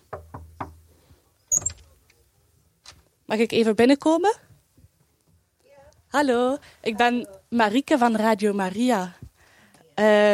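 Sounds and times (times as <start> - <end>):
knocking on a wooden residence door: 0.1 - 0.8
speech: 3.3 - 4.4, 6.1 - 9.2, 10.0 - 10.3.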